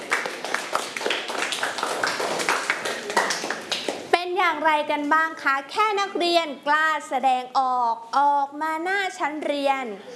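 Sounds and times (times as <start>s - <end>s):
children clapping for a classmate: 0.0s - 4.1s
speech: 4.6s - 10.1s.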